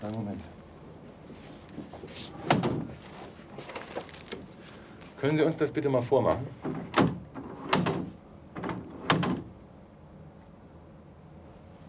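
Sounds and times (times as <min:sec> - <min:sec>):
speech: 0:00.0 - 0:00.6, 0:05.2 - 0:06.7
faint shuffling: 0:00.0 - 0:06.6
door slamming shut: 0:02.4 - 0:02.9, 0:06.7 - 0:09.5.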